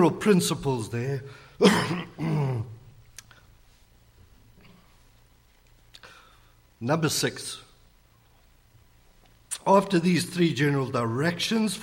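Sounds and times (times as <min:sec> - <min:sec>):
speech: 0:00.0 - 0:02.4, 0:06.8 - 0:07.6, 0:09.6 - 0:11.8
person clearing throat: 0:01.6 - 0:02.8.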